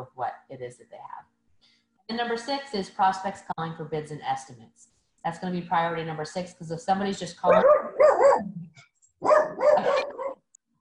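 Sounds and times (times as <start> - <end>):
speech: 0.0 - 1.3, 2.1 - 9.9
small dog barking: 7.5 - 8.4, 9.2 - 10.4.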